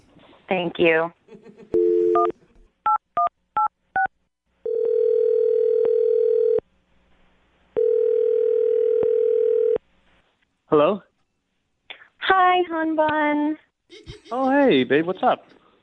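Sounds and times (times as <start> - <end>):
speech: 0.5 - 2.4, 10.7 - 11.1, 12.3 - 15.6
phone line dial tone: 1.8 - 2.3, 4.6 - 6.6, 7.8 - 9.8
laughter: 13.9 - 14.8.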